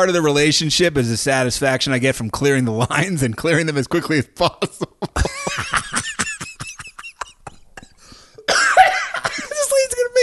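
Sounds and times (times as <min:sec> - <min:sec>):
speech: 0:00.0 - 0:05.6
laughter: 0:04.6 - 0:10.0
person coughing harshly and wheezily: 0:06.4 - 0:09.6.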